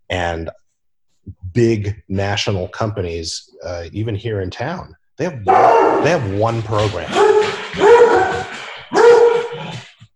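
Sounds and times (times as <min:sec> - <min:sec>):
speech: 0:00.1 - 0:00.6, 0:01.2 - 0:08.0
dog barking: 0:05.5 - 0:06.3, 0:07.0 - 0:09.7.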